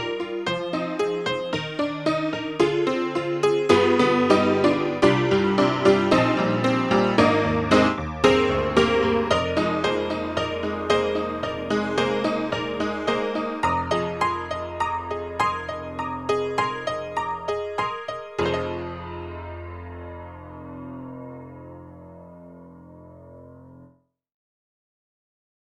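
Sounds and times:
honky tonk music: 0.1 - 19.7.

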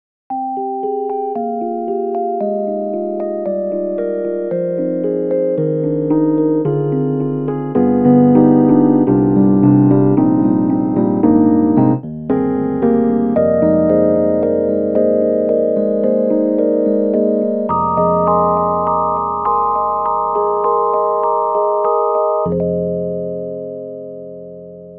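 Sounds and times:
Rhodes Suitcase 88 electric piano: 0.3 - 24.9.

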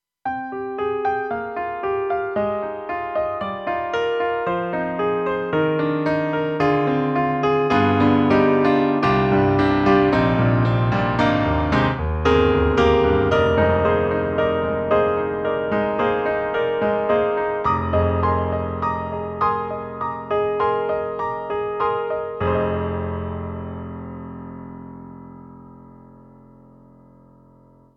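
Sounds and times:
KORG M3 XPanded grand piano: 0.2 - 27.9.

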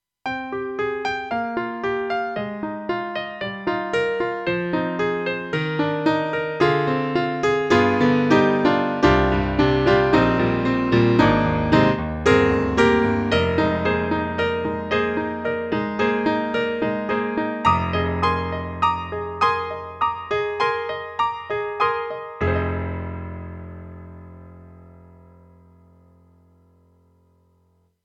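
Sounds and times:
tight grand piano sound module: 0.2 - 27.9.

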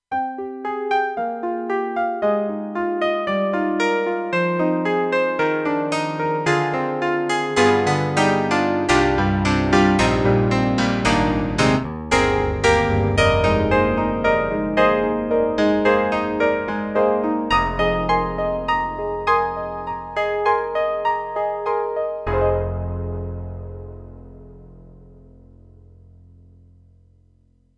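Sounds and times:
electric grand piano on a Roland JV-2080: 0.1 - 26.8.

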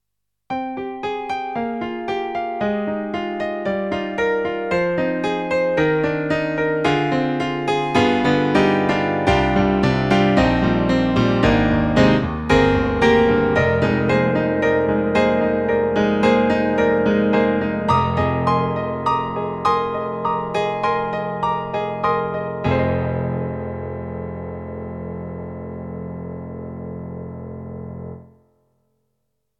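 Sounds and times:
KORG N1R synthesizer: 0.6 - 28.4.

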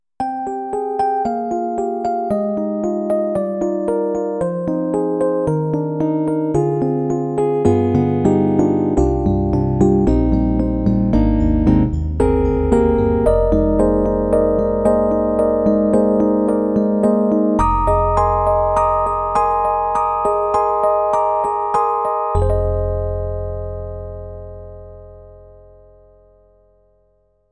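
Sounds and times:
contemporary FM electric piano: 0.2 - 26.9.

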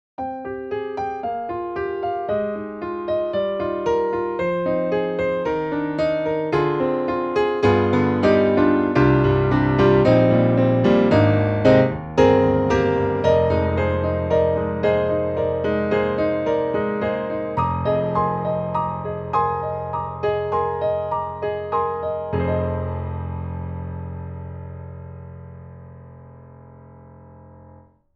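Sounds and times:
vintage piano: 0.2 - 28.1.

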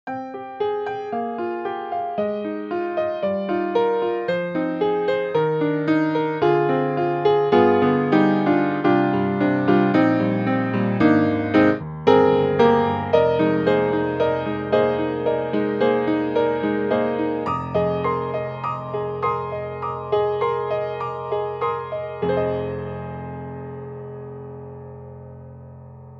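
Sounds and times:
modern upright piano: 0.0 - 26.1.

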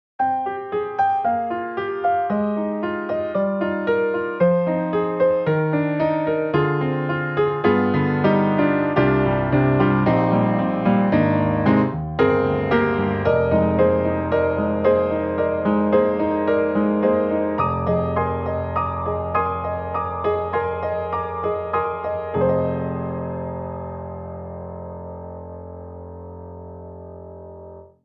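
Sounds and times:
modern upright piano keys in retro stereo: 0.2 - 28.0.

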